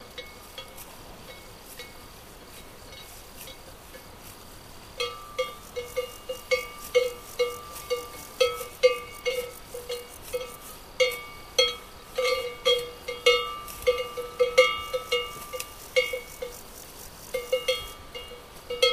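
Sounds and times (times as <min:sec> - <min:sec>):
cowbell on a moving cow: 0:00.0 - 0:04.2, 0:05.0 - 0:18.9
wind: 0:00.0 - 0:18.9.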